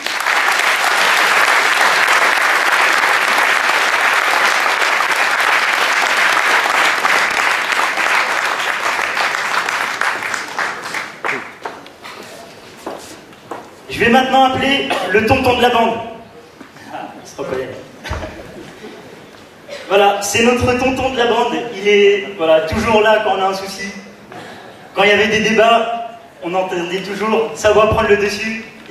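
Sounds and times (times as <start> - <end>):
loud sustained applause from a large audience: 0.0 - 12.0
speech: 14.0 - 16.1, 20.2 - 23.9, 25.0 - 28.9.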